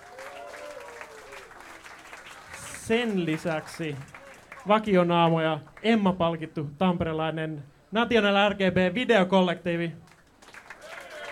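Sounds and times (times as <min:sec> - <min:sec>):
audience applause at a live jazz club night: 0:00.0 - 0:05.5, 0:10.1 - 0:11.3
speech: 0:02.9 - 0:10.0.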